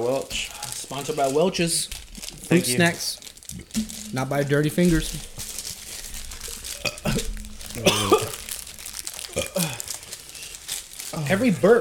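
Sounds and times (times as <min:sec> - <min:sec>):
mouth noises: 0:00.0 - 0:05.4, 0:06.7 - 0:08.5, 0:09.3 - 0:09.9
speech: 0:00.0 - 0:05.4, 0:11.3 - 0:11.8
person burping after drinking whiskey: 0:06.7 - 0:08.6, 0:09.2 - 0:09.9.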